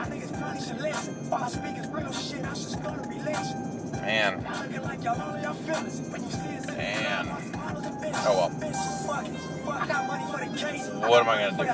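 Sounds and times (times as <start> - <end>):
cars rumbling past: 0.0 - 11.7
road traffic: 0.0 - 11.7
speech: 8.2 - 11.7.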